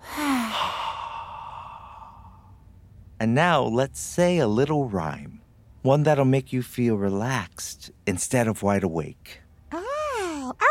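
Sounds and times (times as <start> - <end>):
slow breath in through the nose and out through the mouth: 0.0 - 2.6
speech: 3.2 - 9.4.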